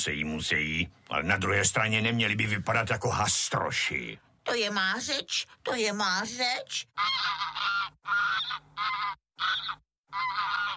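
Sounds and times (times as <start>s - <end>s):
speech: 0.0s - 10.7s
goose honking: 7.0s - 10.7s.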